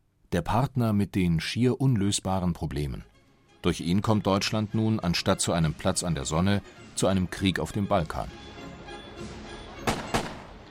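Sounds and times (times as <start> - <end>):
speech: 0.3 - 8.6, 9.2 - 9.4
gunshots: 9.8 - 10.6.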